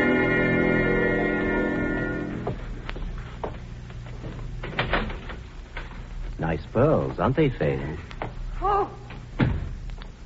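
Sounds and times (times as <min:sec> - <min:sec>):
steady low hum: 0:00.0 - 0:10.2
speech: 0:06.8 - 0:08.1
door swinging shut: 0:09.4 - 0:09.8.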